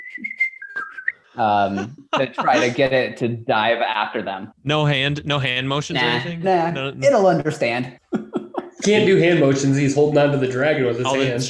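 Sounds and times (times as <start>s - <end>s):
person whistling one steady sustained note: 0.0s - 2.6s
laughter: 1.4s - 3.0s, 5.1s - 6.9s, 8.0s - 11.4s
speech: 1.4s - 8.0s, 8.8s - 11.4s.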